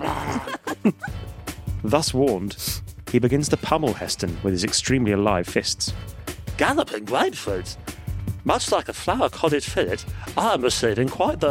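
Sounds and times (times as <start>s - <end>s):
man growling incoherently: 0.0s - 0.6s
speech: 1.9s - 11.4s.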